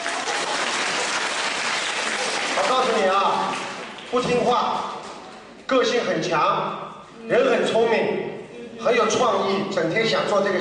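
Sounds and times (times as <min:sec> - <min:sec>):
audience applause: 0:00.0 - 0:04.2
speech: 0:02.6 - 0:05.0, 0:05.7 - 0:10.5.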